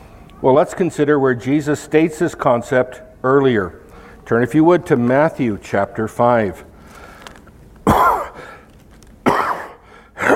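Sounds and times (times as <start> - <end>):
speech: 0.4 - 6.7
harsh abrupt coughs with wheezy tails: 7.8 - 8.6, 9.2 - 10.3.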